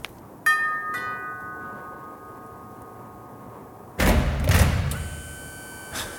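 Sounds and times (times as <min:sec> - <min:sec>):
ringing doorbell chimes: 0:00.5 - 0:02.8
automatic front door of a stone house opening with mechanical whoosh: 0:04.0 - 0:06.1.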